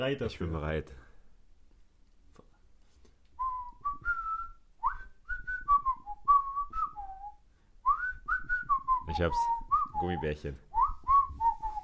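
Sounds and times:
speech: 0.0 - 1.1, 9.1 - 10.7
person whistling a bouncy cartoon theme melody: 3.4 - 11.8.

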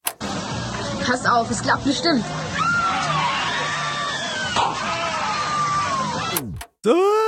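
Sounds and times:
speech: 1.0 - 2.5, 6.8 - 7.2
chorus of many people screaming together: 2.2 - 7.2.

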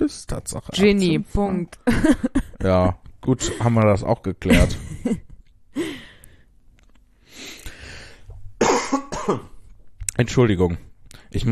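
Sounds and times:
speech: 0.1 - 5.2, 9.3 - 9.5, 10.2 - 11.5
harsh raspy coughs: 8.6 - 9.6.

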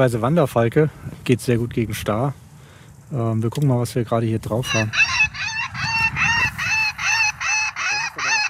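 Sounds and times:
speech: 0.0 - 2.4, 3.1 - 5.1
harsh crow calls played from a bird deterrent speaker: 4.7 - 8.4.

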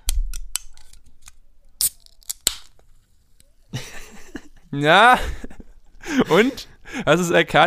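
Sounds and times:
soda can being opened: 0.6 - 2.9
laughter: 3.7 - 7.1
speech: 4.7 - 5.4, 6.1 - 7.6.

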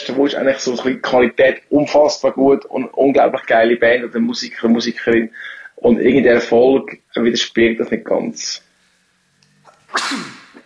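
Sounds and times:
speech: 0.2 - 8.6, 9.9 - 10.4
intake of breath: 5.3 - 5.8
sneeze: 9.8 - 10.6.

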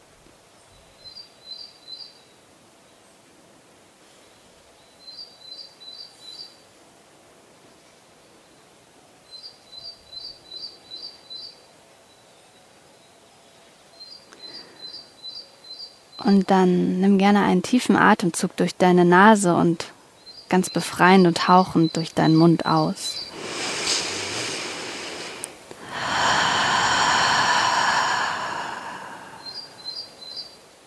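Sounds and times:
soft steady outdoor hush: 0.0 - 30.8
speech: 16.2 - 19.9, 20.5 - 23.2
birds chirping in a forest: 20.2 - 23.5, 25.9 - 30.6.

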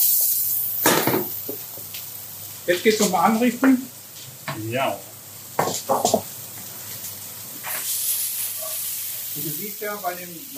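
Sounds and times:
food sizzling in a hot pan: 0.0 - 10.5
speech: 2.7 - 4.0, 4.6 - 5.1, 5.9 - 6.3, 9.4 - 10.5.

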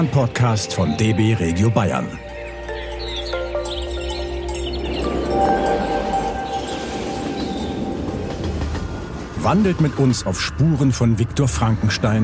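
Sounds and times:
speech: 0.0 - 2.3, 9.4 - 12.2
metallic squeals of train: 2.6 - 9.3
train running on rails: 3.0 - 12.2.

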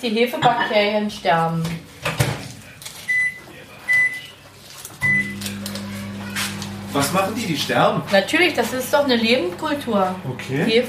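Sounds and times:
speech: 0.0 - 1.8, 6.9 - 10.8
microwave oven heating milk with low steady hum: 5.0 - 10.8.

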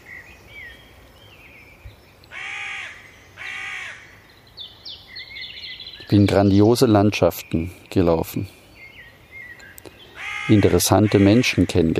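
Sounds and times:
fainter higher bird chirps and whistles: 0.0 - 6.8, 8.4 - 11.1
loud harsh bird caws: 2.3 - 4.2, 9.9 - 11.9
speech: 6.1 - 8.6, 10.5 - 11.9.

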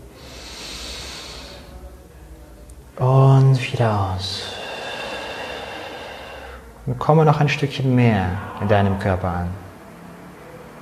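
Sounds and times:
long deep breath drawn in during a guided breathing exercise: 0.0 - 1.8, 4.3 - 6.8, 8.2 - 9.8
speech: 3.0 - 4.5, 6.9 - 9.6.

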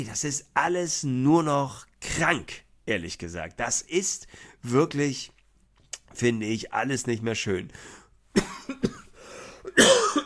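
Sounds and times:
speech: 0.0 - 5.4, 6.1 - 9.0
person having a coughing fit: 8.4 - 10.2.

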